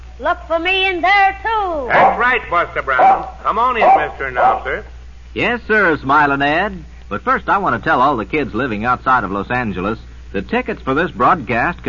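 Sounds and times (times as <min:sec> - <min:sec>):
speech: 0:00.2 - 0:11.8
dog barking in short loud bursts: 0:01.9 - 0:02.3, 0:02.9 - 0:04.8.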